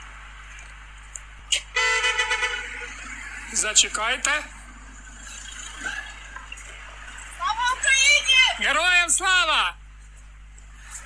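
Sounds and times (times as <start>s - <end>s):
faint steady road hum: 0.0s - 11.0s
car horn honking: 1.5s - 3.9s
speech: 3.6s - 4.6s, 8.6s - 9.8s.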